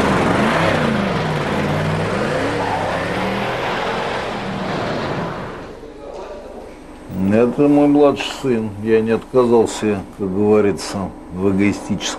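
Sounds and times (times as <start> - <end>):
car engine pulling away: 0.0 - 5.8
speech: 7.6 - 12.1.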